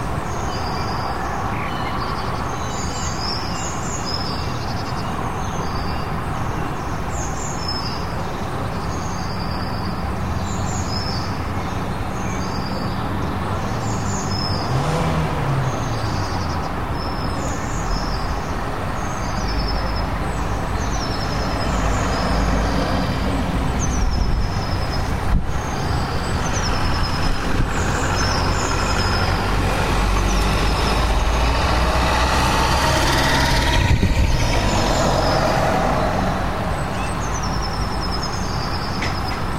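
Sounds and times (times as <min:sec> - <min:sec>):
street traffic of passing cars and trucks through an open window: 0:00.0 - 0:39.5
small birds chirping: 0:00.2 - 0:35.6, 0:36.6 - 0:39.5.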